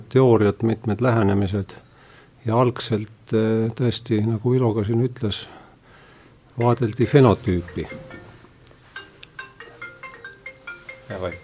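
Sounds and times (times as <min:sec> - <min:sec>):
speech: 0:00.1 - 0:05.6, 0:06.6 - 0:08.1, 0:11.2 - 0:11.4
mobile phone ringtone of bright electronic beeps: 0:06.6 - 0:11.4.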